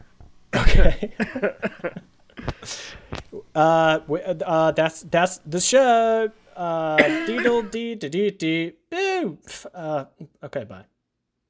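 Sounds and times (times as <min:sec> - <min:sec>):
person coughing: 0:00.6 - 0:01.9, 0:07.0 - 0:07.8
speech: 0:00.8 - 0:02.0, 0:03.6 - 0:10.9.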